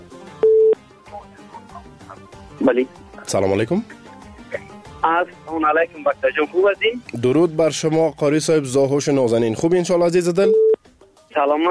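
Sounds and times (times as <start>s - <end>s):
telephone line beep while connecting a listener's call: 0.4s - 0.8s, 10.4s - 10.8s
speech: 2.6s - 4.0s, 5.0s - 10.7s, 11.4s - 11.7s.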